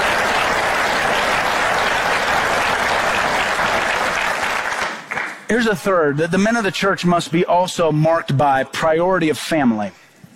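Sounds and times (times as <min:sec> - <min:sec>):
large congregation applauding: 0:00.0 - 0:05.5
speech: 0:05.5 - 0:10.0.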